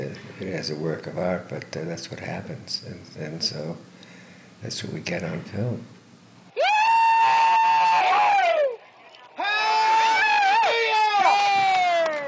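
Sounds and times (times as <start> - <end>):
speech: 0.4 - 4.0, 4.6 - 5.9
crowd of workers shouting with excitement as a curtain is dropped: 6.5 - 12.2.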